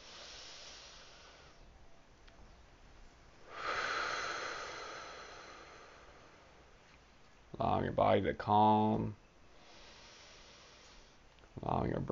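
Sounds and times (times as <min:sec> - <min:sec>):
slow deep breathing in through the nose and out through the mouth: 0:00.0 - 0:01.7, 0:03.4 - 0:06.8, 0:09.5 - 0:11.3
speech: 0:07.6 - 0:09.2, 0:11.9 - 0:12.1.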